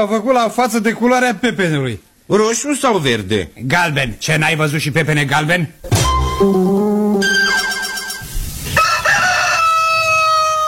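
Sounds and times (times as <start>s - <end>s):
speech: 0.0s - 6.6s
white roosters crowing: 7.2s - 10.6s.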